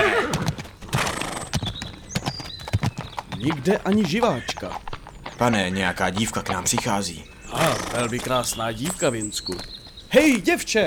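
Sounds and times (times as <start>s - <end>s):
horse whinnying: 0.0s - 9.4s
horses' hooves clip-clopping: 0.0s - 10.8s
speech: 3.4s - 10.8s.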